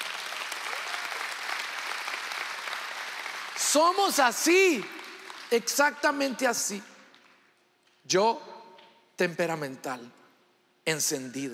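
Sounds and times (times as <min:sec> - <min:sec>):
crowd applauding the speaker's wife: 0:00.0 - 0:05.7
speech: 0:03.7 - 0:06.9, 0:08.1 - 0:08.5, 0:09.2 - 0:10.2, 0:10.9 - 0:11.5.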